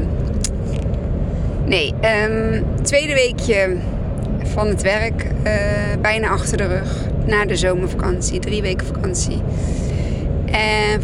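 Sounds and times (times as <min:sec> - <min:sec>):
low rumble of a car engine inside a moving vehicle: 0:00.0 - 0:11.0
road noise inside a moving vehicle: 0:00.0 - 0:11.0
speech: 0:01.7 - 0:09.8, 0:10.5 - 0:11.0.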